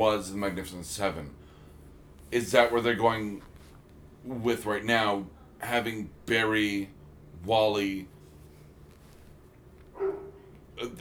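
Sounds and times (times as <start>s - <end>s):
speech: 0.0s - 1.4s, 2.3s - 3.5s, 4.2s - 8.1s, 10.8s - 10.9s
low steady background hum: 0.0s - 10.9s
faint dog bark: 10.0s - 10.5s.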